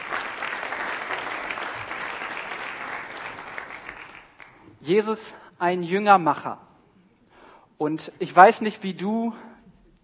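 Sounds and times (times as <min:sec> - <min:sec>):
audience applause: 0:00.0 - 0:04.6
speech: 0:04.8 - 0:06.7, 0:07.8 - 0:09.5.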